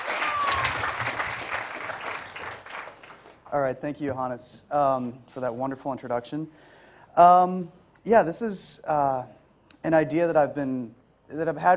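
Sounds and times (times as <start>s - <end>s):
audience applause welcoming a speaker: 0.0s - 3.4s
speech: 3.5s - 11.7s.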